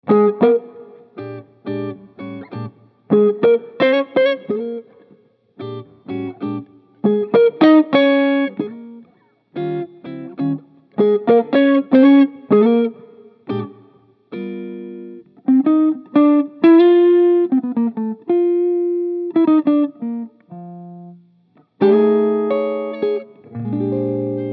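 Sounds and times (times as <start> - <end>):
jazz guitar: 0.0 - 24.5.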